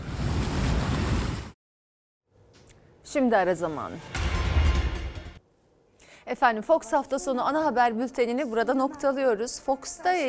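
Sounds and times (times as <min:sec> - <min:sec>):
ocean surf crashing ashore: 0:00.0 - 0:01.6
wind: 0:00.0 - 0:01.6
speech: 0:03.1 - 0:04.2, 0:06.3 - 0:10.2.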